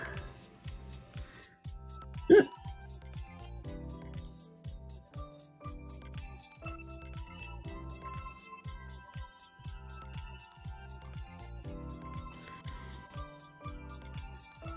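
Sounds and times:
steady rhythmic music: 0:00.0 - 0:14.7
loud hiccup: 0:02.2 - 0:02.6.

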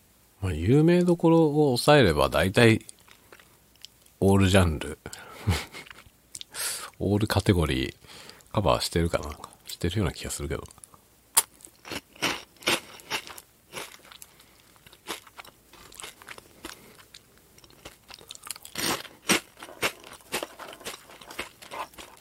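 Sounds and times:
speech: 0:00.4 - 0:02.9, 0:04.2 - 0:05.9, 0:07.0 - 0:10.8
crunchy chewing of Potelong potato snack sticks: 0:02.8 - 0:04.2, 0:11.4 - 0:22.1.

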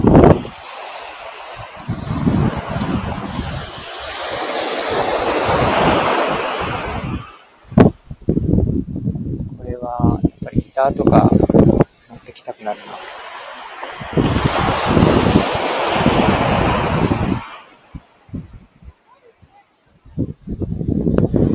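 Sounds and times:
ocean waves breaking on a beach at Hayama Japan: 0:00.0 - 0:07.9, 0:09.7 - 0:21.5
speech: 0:10.8 - 0:11.4.

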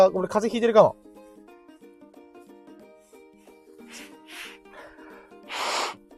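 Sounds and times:
speech: 0:00.0 - 0:01.1
man with a cold blowing nose: 0:03.1 - 0:06.1.

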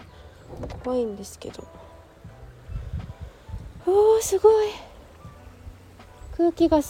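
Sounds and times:
balcony door being opened: 0:00.4 - 0:01.0
speech: 0:00.8 - 0:01.8, 0:03.9 - 0:04.9, 0:06.4 - 0:06.8.

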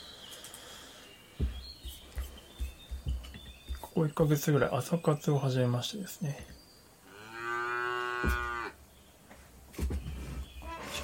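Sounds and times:
rustling and shuffling: 0:01.3 - 0:04.7, 0:08.2 - 0:11.0
speech: 0:04.0 - 0:06.6
cow mooing to greet arriving people: 0:07.1 - 0:08.8.

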